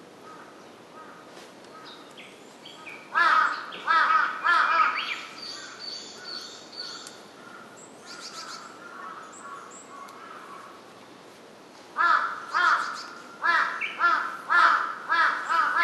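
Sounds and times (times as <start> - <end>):
large-billed crow cawing: 0.2 - 1.9, 3.1 - 5.8, 7.4 - 10.8, 12.0 - 15.8
bird calls: 0.2 - 10.8, 12.0 - 15.8.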